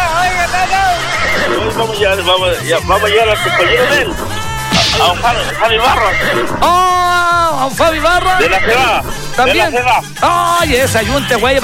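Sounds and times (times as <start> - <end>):
horse neighing: 0.6 - 2.4, 3.0 - 9.5
loud music track with steady thumping bass line: 1.5 - 11.6
speech: 1.8 - 11.6.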